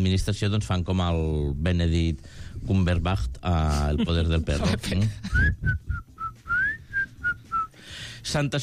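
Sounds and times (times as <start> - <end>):
speech: 0.0 - 6.1, 8.2 - 8.6
person whistling a tune: 5.4 - 7.8.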